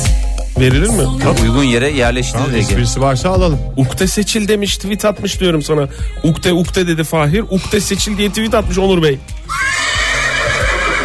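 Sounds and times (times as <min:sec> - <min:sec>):
speech: 0:00.6 - 0:09.7
horse neighing: 0:09.4 - 0:11.0.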